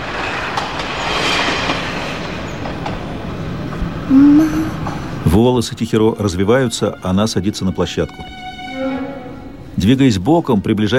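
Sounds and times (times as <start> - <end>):
train rushing along rails at the bottom of a moat: 0.0 - 10.9
speech: 5.4 - 8.4, 9.8 - 10.9
tonal whine: 5.8 - 10.0.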